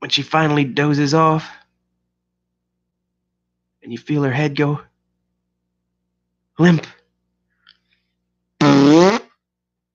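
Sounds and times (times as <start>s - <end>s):
speech: 0.0s - 1.6s, 3.9s - 4.9s, 6.6s - 7.0s
loud fart of a woman dozing off: 8.6s - 9.4s.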